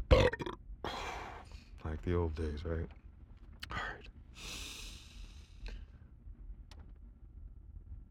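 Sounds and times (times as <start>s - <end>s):
loud rough gurgling belch: 0.1s - 0.6s
speech: 2.0s - 3.0s
brief breathy exhale: 3.7s - 6.0s.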